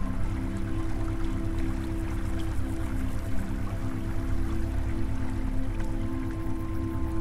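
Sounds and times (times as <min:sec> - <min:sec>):
fast-flowing stream: 0:00.0 - 0:07.1
low sustained humming drone: 0:00.0 - 0:07.1.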